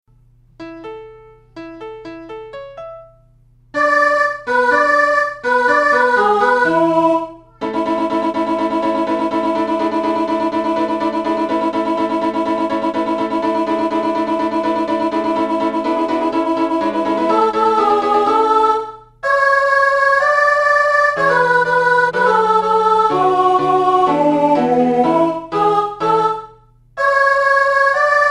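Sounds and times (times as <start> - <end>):
mezzo-soprano singing: 3.8 - 28.2.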